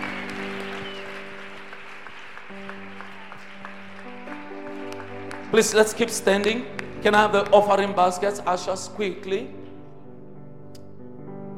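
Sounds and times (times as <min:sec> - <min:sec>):
crowd clapping: 0:00.0 - 0:08.2
sustained keyboard or organ chords: 0:00.0 - 0:11.5
speech: 0:05.5 - 0:09.6.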